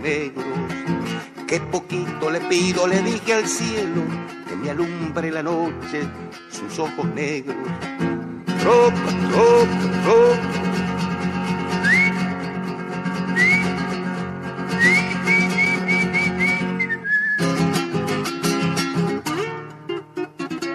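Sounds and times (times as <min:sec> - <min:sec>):
speech: 0:00.0 - 0:00.8, 0:01.5 - 0:10.7
steady instrumental music in a song: 0:00.0 - 0:20.7
sharp rising muleteer's whistles used to drive a herd: 0:13.4 - 0:13.6, 0:14.8 - 0:17.5.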